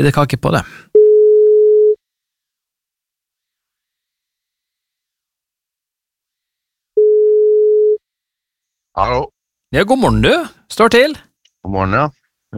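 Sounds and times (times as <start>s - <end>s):
speech: 0.0s - 0.9s, 9.0s - 12.5s
telephone ringback tone while a call goes through: 1.0s - 2.0s, 7.0s - 8.0s.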